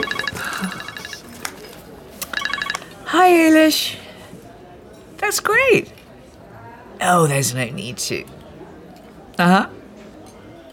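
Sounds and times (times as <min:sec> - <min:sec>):
mobile phone ringing with a chirpy electronic trill: 0:00.0 - 0:01.4, 0:02.2 - 0:03.0
speech: 0:03.3 - 0:04.0, 0:05.3 - 0:06.0, 0:07.0 - 0:08.4, 0:09.4 - 0:09.8.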